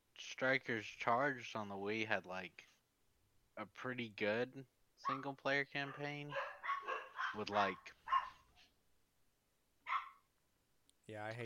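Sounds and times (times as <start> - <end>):
speech: 0.4 - 2.7, 3.6 - 6.5, 7.3 - 8.0, 11.1 - 11.4
dog barking: 5.0 - 8.7, 9.8 - 10.3.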